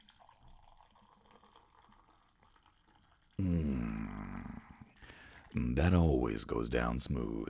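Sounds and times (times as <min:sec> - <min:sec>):
coffee poured from a French press into a cup: 0:00.0 - 0:05.7
speech: 0:05.6 - 0:07.4.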